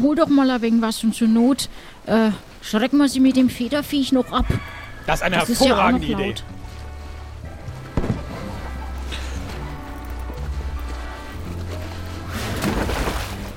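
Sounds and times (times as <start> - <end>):
speech: 0.0 - 6.6
rough crackling bursts: 6.6 - 12.3
cannon shots fired from a merchant ship at sea: 7.9 - 8.6.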